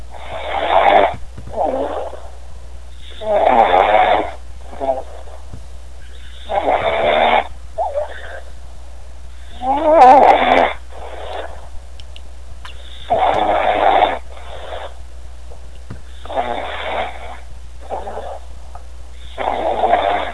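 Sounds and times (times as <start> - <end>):
snoring: 0.1 - 2.4, 3.0 - 5.4, 6.0 - 8.5, 9.4 - 11.6, 12.9 - 15.0, 16.1 - 18.5, 19.2 - 20.3.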